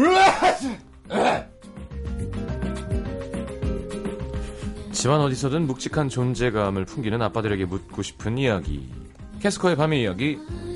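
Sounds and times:
loud theatrical sneeze: 0.0s - 1.5s
music playing: 0.0s - 10.7s
speech: 5.0s - 10.7s.

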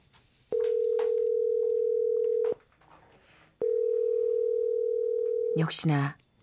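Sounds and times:
telephone ringback tone of unanswered call: 0.5s - 2.6s, 3.6s - 5.6s
speech: 5.6s - 6.2s.

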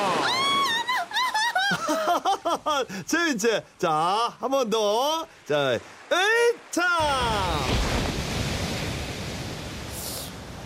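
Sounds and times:
ocean surf roaring: 0.0s - 10.6s
laughter: 0.5s - 2.9s
speech: 2.8s - 7.9s
hiss of spray or a breaking crest: 9.8s - 10.5s.

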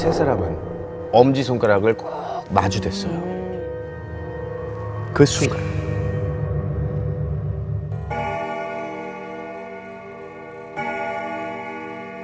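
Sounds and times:
speech: 0.0s - 3.4s, 5.2s - 5.8s
low hum: 3.5s - 8.2s
pendulum wall clock striking midnight: 8.0s - 12.2s.

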